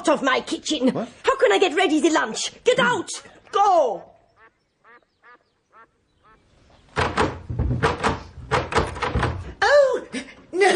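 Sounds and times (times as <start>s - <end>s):
speech: 0.0s - 4.1s
stuck door rattling and thumping as someone tugs at it: 6.9s - 9.6s.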